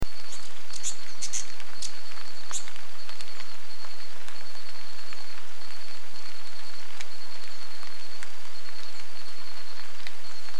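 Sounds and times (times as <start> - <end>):
patter like rain: 0.0 - 10.5
steady insect drone: 0.0 - 10.5
hyacinth visorbearer high sharp chipping notes: 0.1 - 2.7.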